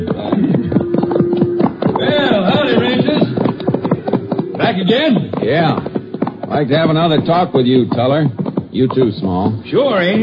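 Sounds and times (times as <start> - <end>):
several horses hooves clopping: 0.0 - 10.2
speech: 4.9 - 5.9, 6.5 - 10.2.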